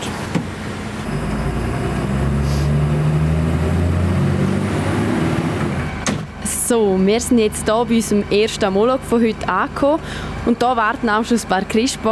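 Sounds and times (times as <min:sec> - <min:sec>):
municipal garbage truck diesel engine droning as it pulls away: 0:00.0 - 0:12.1
sharp clunks: 0:06.0 - 0:06.4
speech: 0:06.7 - 0:12.1.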